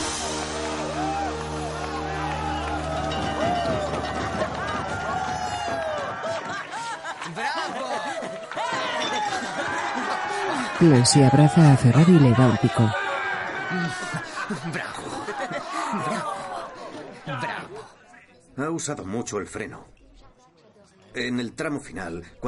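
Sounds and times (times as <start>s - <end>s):
teammates clapping: 0.0s - 10.4s
lively group of teammates cheering and shouting: 0.0s - 17.8s
people laughing: 2.4s - 18.0s
speech: 10.8s - 13.0s, 14.5s - 15.2s, 18.8s - 20.0s, 21.2s - 22.4s.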